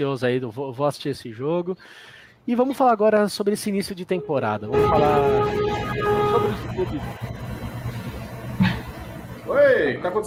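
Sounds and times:
speech: 0.0 - 7.4, 9.5 - 10.2
truck horn blast being tested outside: 4.2 - 7.0.

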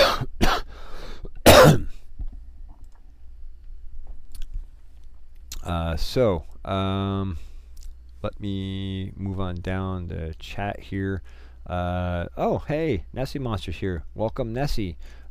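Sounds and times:
person clearing throat: 0.0 - 0.7, 1.4 - 2.0
person coughing: 0.0 - 2.0
speech: 6.0 - 7.5, 8.2 - 15.2.

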